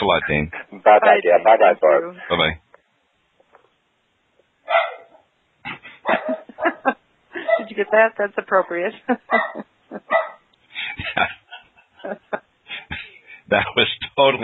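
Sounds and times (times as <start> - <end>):
speech: 0.0 - 2.6, 7.8 - 10.4, 11.0 - 11.4, 12.0 - 12.5, 13.5 - 14.4
dogs barking: 4.6 - 5.3, 6.0 - 7.8, 9.2 - 10.5
laughter: 5.7 - 10.1, 10.8 - 14.0.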